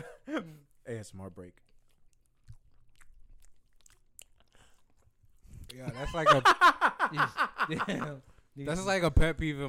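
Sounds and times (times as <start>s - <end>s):
speech: 0.3s - 1.7s, 5.7s - 9.6s
crunchy chewing and biting of crisp cookies: 1.5s - 5.5s
wet mouth sounds: 1.6s - 5.8s
laughter: 5.8s - 8.2s.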